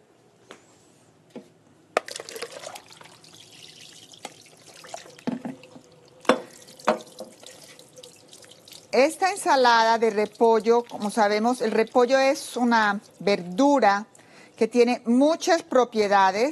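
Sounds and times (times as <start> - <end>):
water splashing and trickling as chopped peeled apples are drained from lemon water: 2.0 - 14.7
speech: 9.0 - 16.5.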